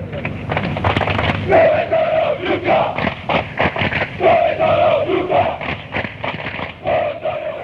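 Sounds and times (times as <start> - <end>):
football ultras chanting a taunt at rival fans: 1.4 - 7.6
constant roar of massed football crowd voices: 1.5 - 3.1, 4.2 - 5.7, 6.8 - 7.6.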